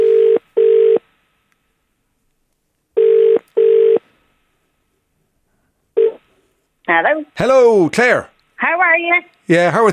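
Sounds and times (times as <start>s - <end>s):
telephone ringback tone on an outgoing call: 0.0s - 1.0s, 3.0s - 4.0s
speech: 6.9s - 9.9s.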